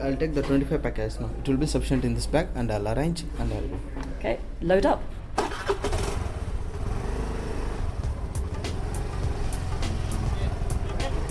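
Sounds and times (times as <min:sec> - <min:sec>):
speech: 0:00.0 - 0:05.9
road noise in busy Bangalore city traffic: 0:00.0 - 0:11.2
delivery rider's motorbike engine rumbling through Bangalore city traffic: 0:05.4 - 0:11.2.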